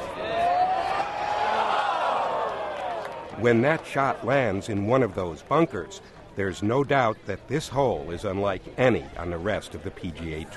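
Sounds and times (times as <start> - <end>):
large crowd of golf fans roaring and cheering after a tee shot: 0.0 - 4.7
speech: 3.4 - 10.5.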